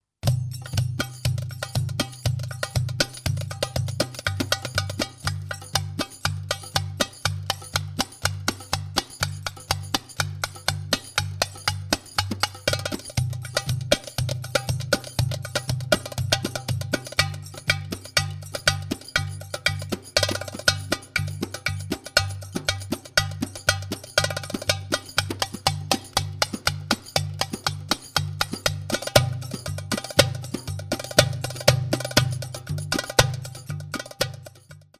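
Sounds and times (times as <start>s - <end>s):
oriental solo tabla drums for training: 0.2s - 34.9s.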